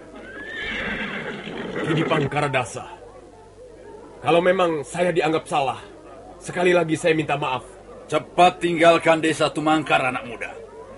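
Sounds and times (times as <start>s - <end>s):
horse neighing: 0.2s - 2.4s
speech: 1.8s - 3.0s, 4.2s - 10.6s.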